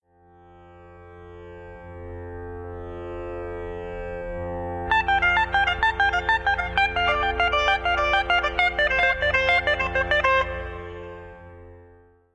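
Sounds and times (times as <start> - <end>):
pedal steel drone: 4.4 - 11.7.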